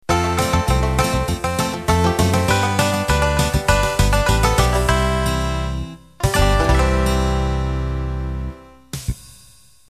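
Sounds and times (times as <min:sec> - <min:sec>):
Cajun country music ending: 0:00.1 - 0:08.6.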